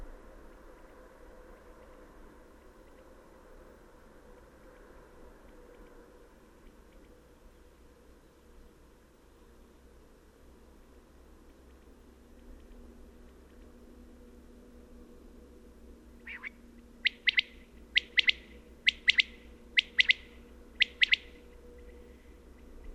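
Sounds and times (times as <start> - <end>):
faint hum: 0.0 - 22.9
common quail Coturnix coturnix singing at dawn: 16.2 - 21.9.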